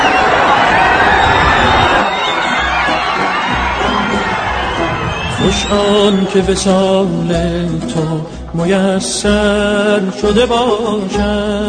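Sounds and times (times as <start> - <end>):
large crowd shouting and cheering as a car approaches: 0.0 - 6.9
speech: 5.7 - 11.6.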